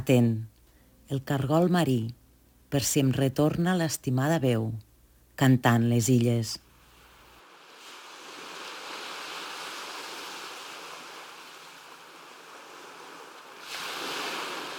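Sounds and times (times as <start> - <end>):
speech: 0.0 - 0.5, 1.1 - 6.6
sea waves rolling in: 7.4 - 14.7.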